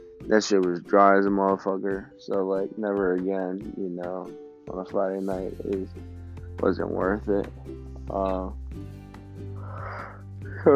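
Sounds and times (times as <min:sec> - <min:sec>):
speech: 0:00.3 - 0:09.0
person yawning: 0:09.6 - 0:10.2.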